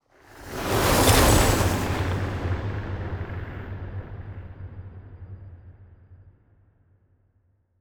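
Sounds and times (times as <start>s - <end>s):
battleship moving: 0.5s - 2.4s.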